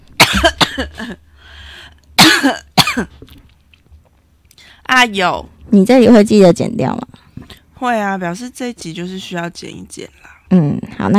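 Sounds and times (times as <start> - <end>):
harsh explosive coughs: 0.2 - 1.2, 2.2 - 3.2
speech: 0.4 - 1.3, 2.4 - 3.2, 4.9 - 7.2, 7.8 - 11.1.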